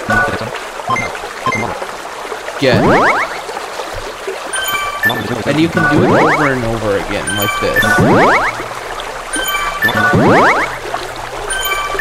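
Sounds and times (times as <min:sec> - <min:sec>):
video game effect of scooping water from a river: 0:00.0 - 0:11.9
speech: 0:02.6 - 0:03.3, 0:05.1 - 0:08.6, 0:09.8 - 0:10.8
faint tinkling tones: 0:04.5 - 0:06.1, 0:09.3 - 0:10.0, 0:11.4 - 0:11.9.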